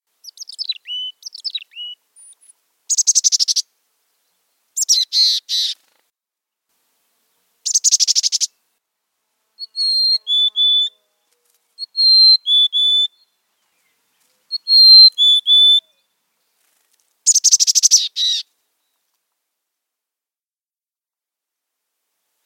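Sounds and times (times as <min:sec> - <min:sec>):
Mountain Chickadee: 0:00.2 - 0:03.7, 0:04.8 - 0:06.0, 0:07.1 - 0:08.6, 0:09.6 - 0:19.1.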